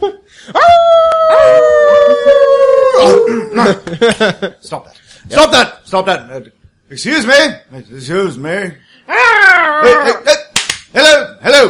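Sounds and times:
voices imitating howling dogs in wavering howls: 0.6 - 3.5, 9.1 - 10.2
speech: 3.6 - 11.6.

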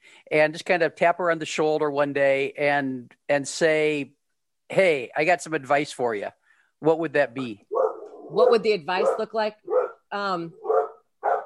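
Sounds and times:
speech: 0.3 - 10.6
dog barking at a man putting fertilizer on the lawn: 7.7 - 11.4.

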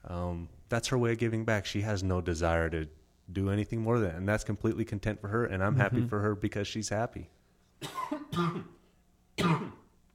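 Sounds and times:
speech: 0.3 - 8.8, 9.4 - 9.8
harsh coughs: 7.8 - 8.8, 9.4 - 10.0.

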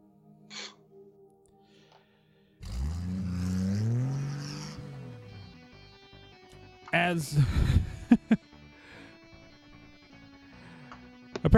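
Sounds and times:
vehicle engine accelerating loudly: 2.6 - 5.8
speech: 7.0 - 8.5.

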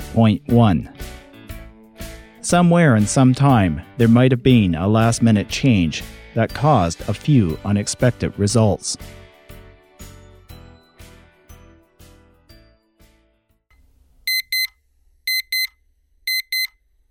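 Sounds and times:
speech: 0.2 - 1.0, 2.4 - 9.2
shrill alarm clock with rapid double beeps: 14.3 - 14.7, 15.3 - 16.8.

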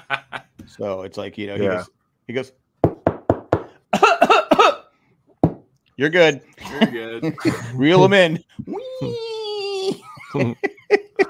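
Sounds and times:
laughter: 0.0 - 0.6, 6.6 - 11.2
speech: 0.7 - 2.6, 6.0 - 9.3, 10.3 - 10.8
person coughing with dry and raspy coughs: 4.0 - 4.8.

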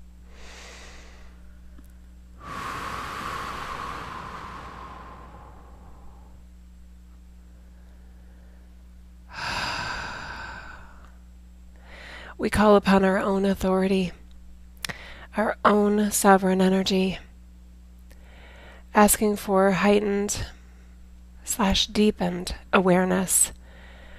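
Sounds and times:
faint hiss: 0.0 - 24.1
deep breaths taken during a webinar: 0.3 - 1.7, 2.4 - 6.5, 7.6 - 11.2, 11.8 - 12.4, 14.9 - 15.3, 18.2 - 18.9, 23.6 - 24.1
speech: 12.4 - 14.2, 15.4 - 17.2, 19.0 - 20.6, 21.5 - 23.6.

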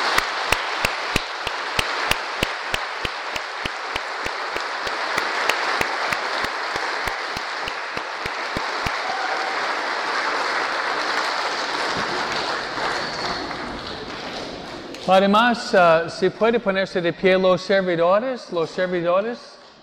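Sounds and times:
crowd applauding participants finishing a retreat: 0.0 - 15.1
speech: 15.1 - 19.6.

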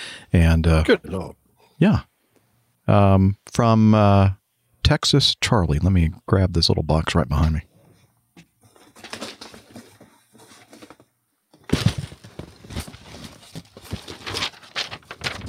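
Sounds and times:
speech: 0.3 - 2.1, 2.9 - 7.7
mailed paper sheet being handled and unfolded: 8.6 - 11.1, 11.7 - 15.4.

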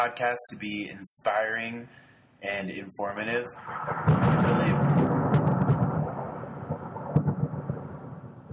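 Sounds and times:
speech: 0.0 - 5.0
thunder rumbling: 3.0 - 8.5.

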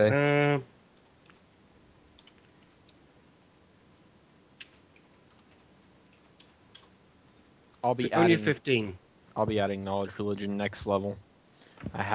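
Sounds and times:
speech: 0.0 - 0.7, 7.9 - 12.1
steady low hiss: 0.0 - 12.1
faint taps on a computer keyboard: 2.1 - 3.0, 4.6 - 6.9.

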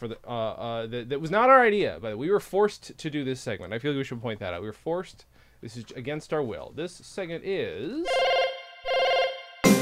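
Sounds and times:
speech: 0.0 - 8.4
telephone dial tone: 8.1 - 9.4
telephone ringing: 8.1 - 9.7.

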